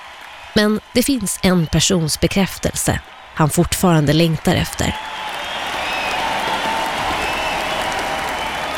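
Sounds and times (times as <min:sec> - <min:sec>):
large arena crowd clapping: 0:00.0 - 0:08.7
speech: 0:00.6 - 0:05.4
whistles from an arena crowd: 0:05.0 - 0:08.7.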